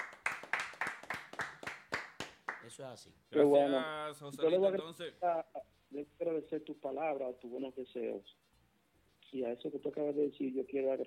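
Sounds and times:
rhythmic hand clapping: 0:00.0 - 0:02.8
speech: 0:02.7 - 0:08.4, 0:09.3 - 0:11.0.

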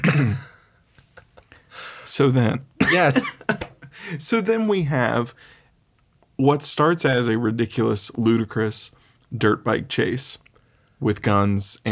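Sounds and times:
person coughing harshly: 0:00.0 - 0:00.7, 0:02.8 - 0:03.6
speech: 0:00.2 - 0:00.5, 0:02.1 - 0:05.6, 0:06.4 - 0:10.4, 0:11.0 - 0:11.9.

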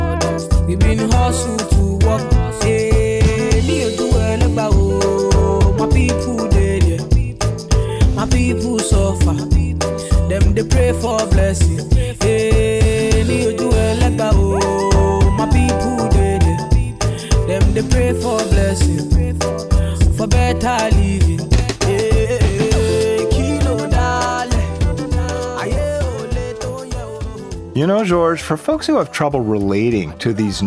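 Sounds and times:
Nigerian Naija pop song with bouncy syncopated beat: 0:00.0 - 0:30.6
speech: 0:00.7 - 0:02.3, 0:27.8 - 0:30.6.

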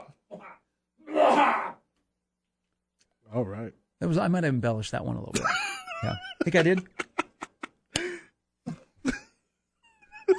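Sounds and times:
speech: 0:03.3 - 0:07.0
laughter: 0:05.3 - 0:08.0
person clearing throat: 0:08.6 - 0:09.4.

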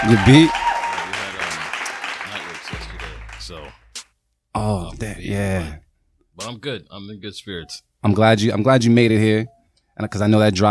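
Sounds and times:
speech: 0:00.0 - 0:00.6, 0:04.6 - 0:05.8, 0:06.4 - 0:10.6
a few people clapping in a studio: 0:00.0 - 0:03.8.

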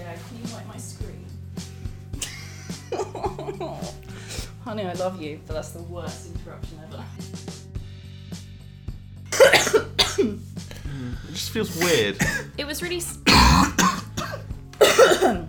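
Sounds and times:
laughter: 0:02.2 - 0:04.1
soft breaths: 0:04.1 - 0:04.6
speech: 0:04.7 - 0:07.3, 0:11.3 - 0:13.7
person coughing in a harsh raspy coughing fit: 0:09.4 - 0:10.4, 0:11.7 - 0:12.5, 0:13.3 - 0:15.4.

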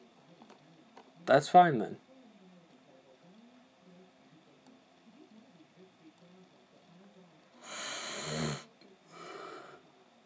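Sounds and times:
speech: 0:01.3 - 0:02.0
person yawning with a groan and sighing exhale: 0:07.6 - 0:08.6.

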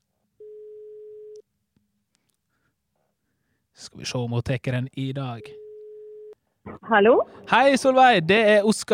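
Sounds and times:
telephone ringback tone of an outgoing call from a studio: 0:00.4 - 0:01.4, 0:05.4 - 0:06.4
speech: 0:03.8 - 0:05.6, 0:06.6 - 0:08.9.

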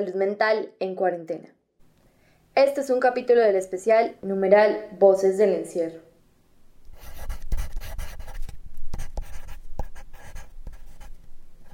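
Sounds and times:
speech: 0:00.0 - 0:01.6, 0:02.6 - 0:06.1
ballpoint pen running low on ink scratching across paper: 0:06.9 - 0:11.7.

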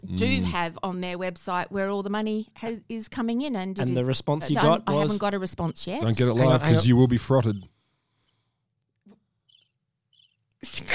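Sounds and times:
speech: 0:00.1 - 0:07.7
tiny crickets chirping: 0:09.5 - 0:10.6.

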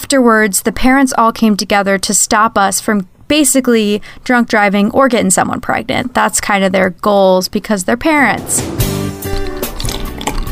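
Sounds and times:
speech: 0:00.1 - 0:08.9
drink pouring into a glass: 0:09.2 - 0:10.4.

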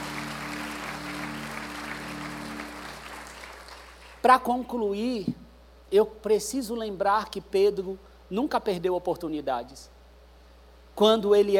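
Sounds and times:
congregation applauding: 0:00.0 - 0:04.2
low steady hum: 0:00.0 - 0:11.5
speech: 0:04.2 - 0:10.0, 0:11.0 - 0:11.5.

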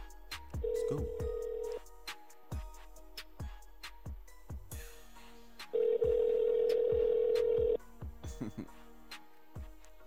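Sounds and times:
regular thumping beat: 0:00.0 - 0:04.8, 0:05.6 - 0:08.7
phone line dialing out with short tones: 0:00.6 - 0:01.8, 0:05.8 - 0:07.8.

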